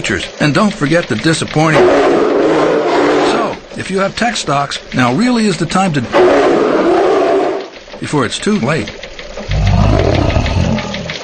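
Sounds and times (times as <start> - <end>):
speech: 0.0 - 3.0, 3.8 - 6.9, 8.0 - 9.0
bear roar sound effect: 1.7 - 3.6, 6.1 - 7.7, 9.5 - 11.2.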